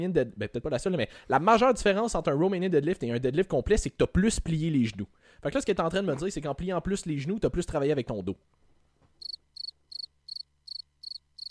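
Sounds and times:
speech: 0.0s - 8.6s
cricket chirping: 9.2s - 11.4s.

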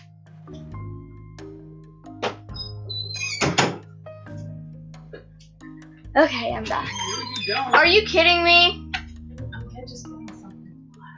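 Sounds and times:
door pushed shut: 2.2s - 3.8s
speech: 6.2s - 8.8s.

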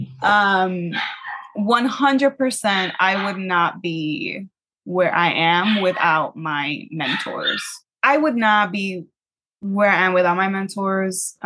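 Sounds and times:
speech: 0.2s - 11.4s
dog barking downstairs: 0.9s - 1.6s, 2.7s - 3.4s, 7.0s - 7.8s.

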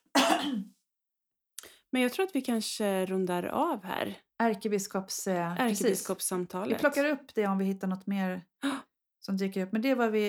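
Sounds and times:
rough throat-clearing cough: 0.2s - 0.7s
speech: 1.9s - 10.2s.

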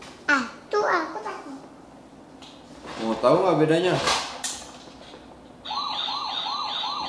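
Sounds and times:
speech: 3.2s - 4.3s
fire engine siren: 5.6s - 7.0s.

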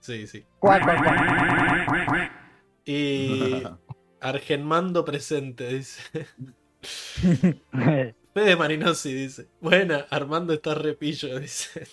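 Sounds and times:
speech: 0.0s - 11.9s
duck quack sound effect: 0.6s - 2.5s
laughter: 3.2s - 3.9s, 7.1s - 7.6s.

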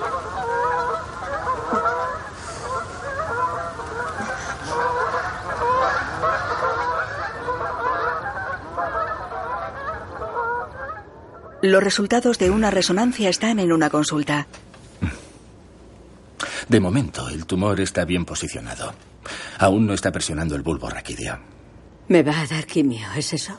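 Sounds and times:
flock of ducks honking flying past in formation: 0.0s - 13.3s
speech: 11.6s - 14.6s, 16.7s - 23.5s.

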